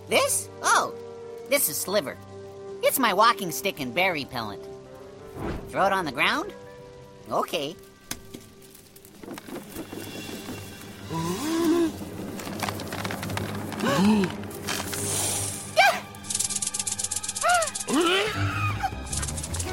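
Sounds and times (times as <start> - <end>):
speech: 0.1 - 4.7, 5.4 - 6.6, 7.3 - 7.9, 13.9 - 14.4
rattlesnake rattling: 8.5 - 18.1, 18.9 - 19.7.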